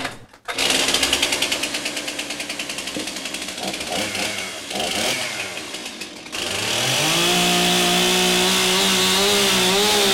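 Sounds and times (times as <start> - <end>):
chainsaw cutting through a wooden door: 0.5 - 10.1.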